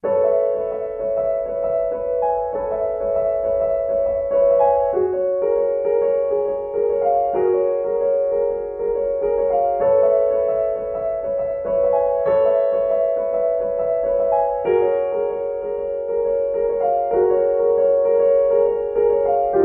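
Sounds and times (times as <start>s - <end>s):
solo piano piece: 0.0s - 19.6s.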